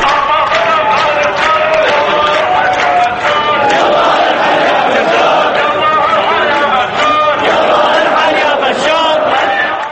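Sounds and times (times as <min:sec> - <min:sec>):
large protest crowd chanting slogans: 0:00.0 - 0:09.8.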